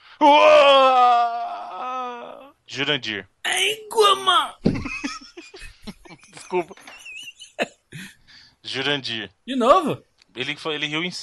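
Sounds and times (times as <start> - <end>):
person voicing a dying moan imitating a game character's death: 0.2 - 2.5
speech: 2.7 - 4.8, 6.5 - 6.8, 8.7 - 11.2
laughter: 4.7 - 8.1.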